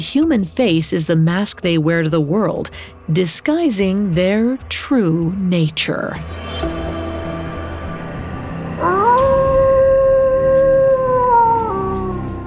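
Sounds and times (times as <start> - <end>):
speech: 0.0 - 6.7
low murky ambient background: 1.3 - 12.4
wolf-like howl: 8.4 - 12.4.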